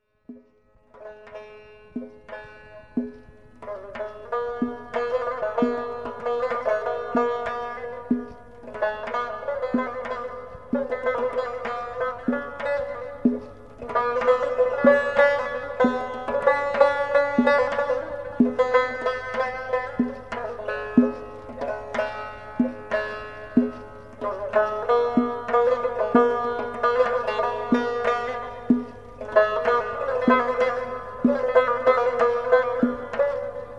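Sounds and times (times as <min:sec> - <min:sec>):
rubab: 0:00.0 - 0:33.7.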